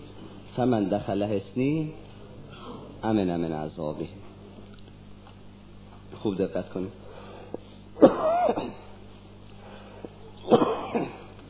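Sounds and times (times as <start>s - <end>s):
speech: 0.6s - 2.1s, 3.0s - 4.2s, 6.2s - 7.0s, 8.0s - 8.8s
person coughing in harsh rough bursts: 8.0s - 8.9s, 10.4s - 11.3s.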